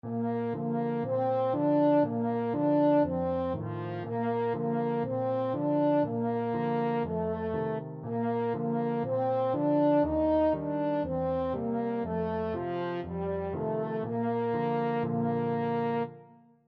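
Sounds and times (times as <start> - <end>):
French horn melody: 0.0 - 16.6.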